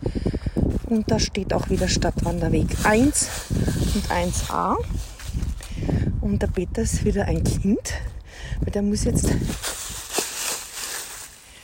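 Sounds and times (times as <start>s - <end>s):
speech: 0.9s - 5.1s, 6.3s - 9.7s
running footsteps through dry fallen leaves: 1.6s - 5.8s, 9.2s - 11.6s.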